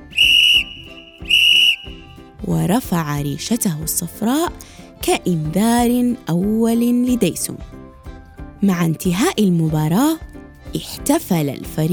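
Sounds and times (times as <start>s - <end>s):
referee's whistle blasts: 0.0s - 2.1s
speech: 2.5s - 7.8s, 8.6s - 11.9s.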